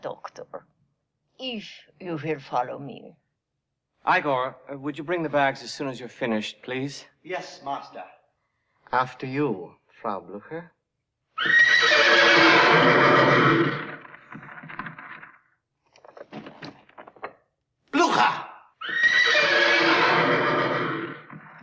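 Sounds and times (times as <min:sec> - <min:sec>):
speech: 0:01.4 - 0:03.2, 0:04.0 - 0:08.2, 0:08.9 - 0:10.8, 0:12.4 - 0:13.9
wild horse whinnies: 0:11.4 - 0:15.2, 0:18.0 - 0:21.6
clattering hooves: 0:12.5 - 0:17.4, 0:20.0 - 0:21.6.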